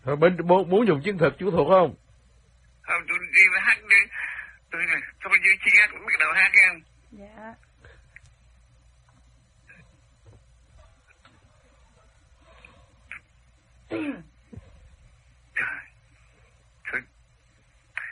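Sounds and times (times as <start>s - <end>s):
speech: 0.0s - 2.0s, 2.9s - 7.7s, 13.9s - 14.3s, 16.9s - 17.1s
low hum: 0.0s - 18.1s
man clearing his throat: 13.9s - 14.4s
man coughing: 13.9s - 14.4s.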